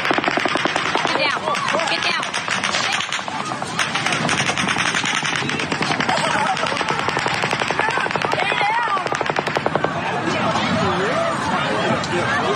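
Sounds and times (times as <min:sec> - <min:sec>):
machine gun fire in sustained dense bursts: 0:00.0 - 0:10.0
people talking: 0:01.0 - 0:12.5
laughter: 0:02.9 - 0:12.5.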